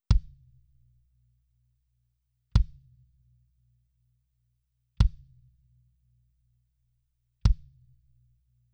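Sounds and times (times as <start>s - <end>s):
kick drum through compressor: 0.0s - 0.6s, 2.5s - 3.1s, 5.0s - 5.6s, 7.4s - 8.0s.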